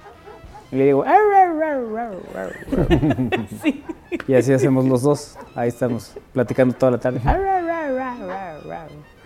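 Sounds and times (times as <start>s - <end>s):
speech: 0.7s - 7.5s
person imitating a dog howling and yelping: 1.0s - 2.6s, 7.3s - 9.0s
laughter: 2.1s - 7.4s.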